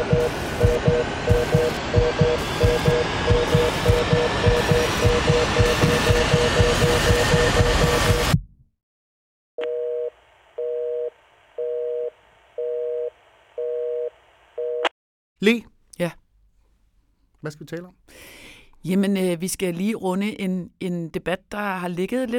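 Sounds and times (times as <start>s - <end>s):
telephone busy signal while calling back: 0.0s - 7.1s, 9.6s - 14.9s
rush of noise: 0.0s - 8.3s
speech: 15.4s - 16.2s, 17.4s - 22.3s.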